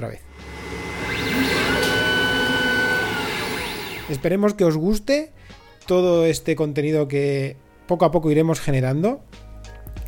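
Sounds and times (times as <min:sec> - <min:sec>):
speech: 0:00.0 - 0:01.6, 0:04.1 - 0:09.4
lab qPCR machine opening with motorized whir: 0:00.3 - 0:04.3.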